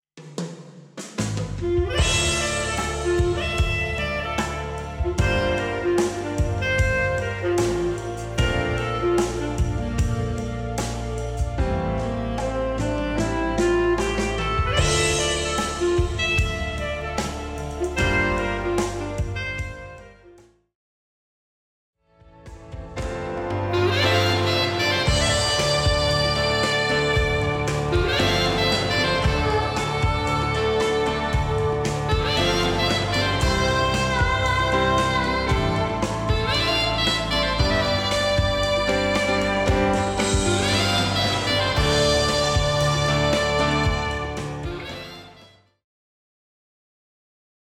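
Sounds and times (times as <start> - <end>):
saxophone backing track: 1.2 - 20.6, 22.4 - 45.8.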